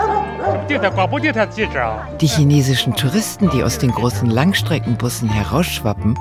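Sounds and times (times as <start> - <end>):
dog barking and yipping: 0.0 - 1.0
speech: 0.7 - 6.2.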